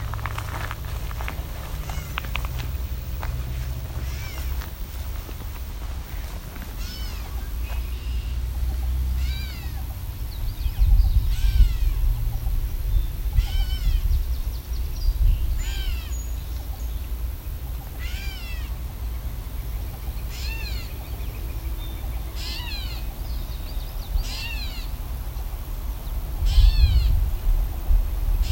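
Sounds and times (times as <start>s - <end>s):
handling noise: 0.0s - 7.9s
low rumbling wind: 0.0s - 28.5s
gray catbird giving nasal cat-like mewing calls: 1.7s - 2.6s, 3.8s - 4.7s, 6.7s - 8.2s, 9.2s - 9.9s, 11.2s - 12.0s, 13.3s - 14.1s, 15.6s - 16.1s, 17.8s - 18.7s, 20.3s - 21.0s, 22.3s - 23.2s, 24.2s - 25.0s, 26.4s - 27.2s.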